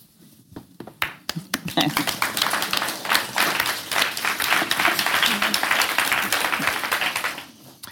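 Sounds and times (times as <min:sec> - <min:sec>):
audience applause after a reading: 0:01.4 - 0:07.7.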